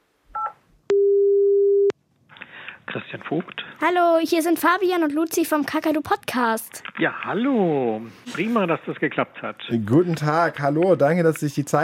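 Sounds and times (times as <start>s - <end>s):
two-tone electronic telephone dialing beep: 0.4s - 1.9s
speech: 2.9s - 11.8s.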